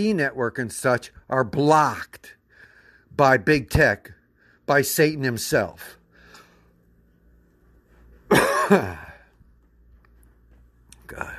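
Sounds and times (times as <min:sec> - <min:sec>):
speech: 0:00.0 - 0:02.4, 0:03.2 - 0:06.0, 0:08.3 - 0:09.0, 0:11.1 - 0:11.3
rough cough breaking into a throaty rasp: 0:08.3 - 0:09.3.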